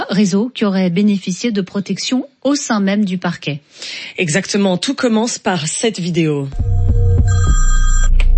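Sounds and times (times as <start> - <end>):
speech: 0.1 - 7.8
telephone ringing with a bright electronic trill: 6.6 - 8.2.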